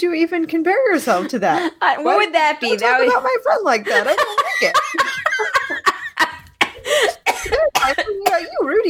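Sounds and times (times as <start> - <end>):
speech: 0.0 - 6.4, 7.0 - 8.8
laughter: 1.0 - 7.0
person coughing: 4.4 - 8.8.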